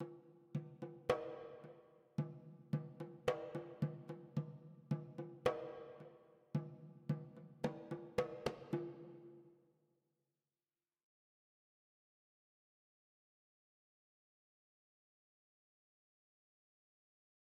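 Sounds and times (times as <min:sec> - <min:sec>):
drums: 0:00.0 - 0:09.4.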